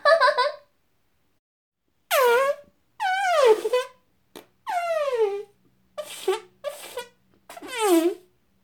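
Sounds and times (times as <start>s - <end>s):
squeaky comic fart sound effects: 2.1s - 8.3s.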